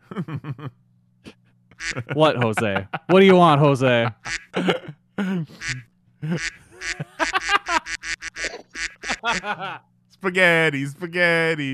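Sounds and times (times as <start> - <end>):
laughter: 0.0 - 0.8, 1.8 - 4.7, 5.6 - 9.9
speech: 0.2 - 0.8, 1.9 - 8.0, 9.2 - 11.7
pet giving harsh honking coughs: 4.5 - 5.8.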